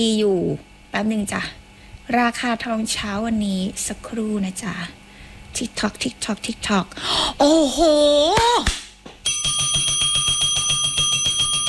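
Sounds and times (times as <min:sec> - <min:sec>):
speech: 0:00.0 - 0:08.8
loud bell ringing continuously, marking a drop in the gold price: 0:09.2 - 0:11.6.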